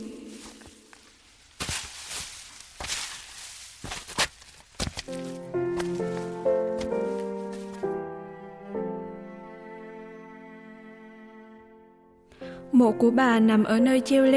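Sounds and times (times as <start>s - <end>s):
footsteps through grass and brush on a trailless mountainside: 0.0s - 8.0s
gentle melodic music: 5.0s - 14.3s
speech: 12.8s - 14.3s.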